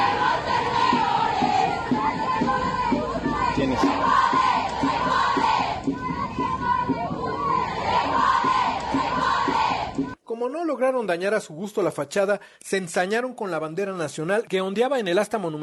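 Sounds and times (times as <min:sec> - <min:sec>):
busy street-like din: 0:00.0 - 0:10.2
large crowd of protesters shouting a rhythmic chant in unison: 0:00.0 - 0:10.2
speech: 0:10.6 - 0:15.6.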